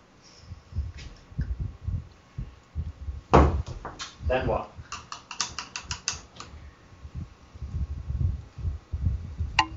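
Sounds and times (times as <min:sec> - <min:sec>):
soft low thuds: 0:00.5 - 0:04.9, 0:06.6 - 0:09.7
speech: 0:04.3 - 0:04.8.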